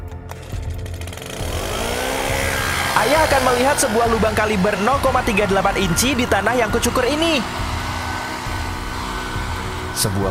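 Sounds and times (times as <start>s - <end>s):
leaf blower starter cord pulled: 0.1s - 3.8s
leaf blower two-stroke engine starting and revving: 0.3s - 10.3s
speech: 3.0s - 7.7s, 10.0s - 10.3s.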